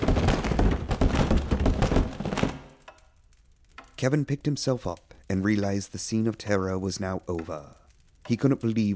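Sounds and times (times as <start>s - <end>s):
loud thud of body hitting the bottom of a staircase: 0.0s - 2.7s
person tumbling down a staircase with heavy thumps: 0.0s - 2.8s
speech: 4.0s - 8.9s.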